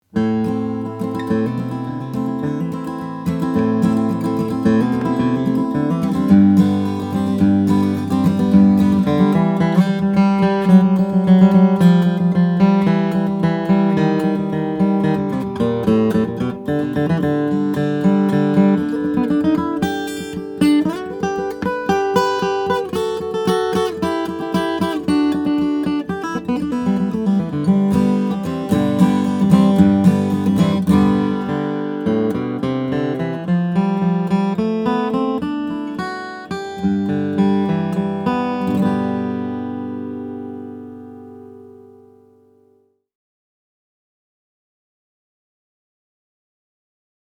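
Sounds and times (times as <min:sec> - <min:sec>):
guitars of reclaimed wood: 0:00.0 - 0:42.8.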